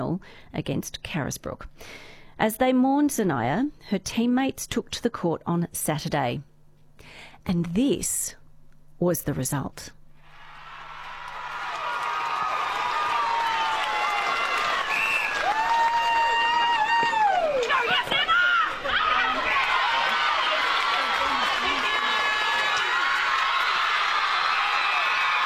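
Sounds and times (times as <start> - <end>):
speech: 0.1 - 8.4, 9.0 - 10.0
netball players cheering and celebrating a grand final win: 10.4 - 25.4.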